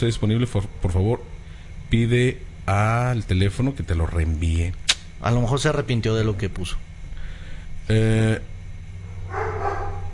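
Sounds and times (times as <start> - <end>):
speech: 0.0 - 6.9, 7.9 - 8.5
dog barking: 9.2 - 10.1.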